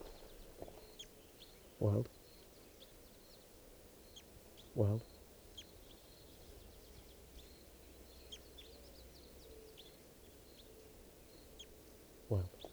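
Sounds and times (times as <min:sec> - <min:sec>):
Red Crossbill calls: 0:00.0 - 0:00.6
wind: 0:00.0 - 0:12.7
speech: 0:01.8 - 0:02.2, 0:04.8 - 0:05.1, 0:12.3 - 0:12.6.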